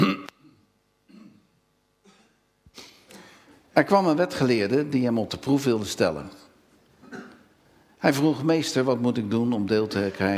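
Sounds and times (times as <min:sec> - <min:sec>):
person coughing: 0:00.0 - 0:02.5, 0:07.0 - 0:07.5
throat clearing: 0:00.0 - 0:03.3, 0:07.0 - 0:07.5
speech: 0:03.8 - 0:06.4, 0:08.0 - 0:10.3.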